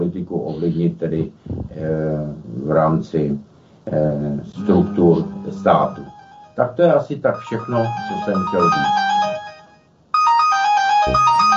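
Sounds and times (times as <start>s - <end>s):
speech: 0.2s - 9.2s
phone ringtone during a panel discussion: 4.7s - 6.6s, 7.4s - 11.5s.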